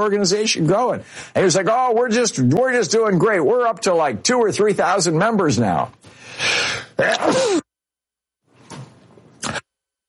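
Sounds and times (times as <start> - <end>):
speech: 0.0 - 7.6
loud sneeze with a harsh rush of air and a voiced squeal: 6.7 - 7.7.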